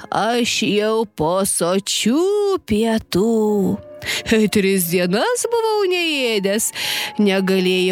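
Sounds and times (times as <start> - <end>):
speech: 0.1 - 7.8
wolf gorged on young goats howling: 5.9 - 7.8.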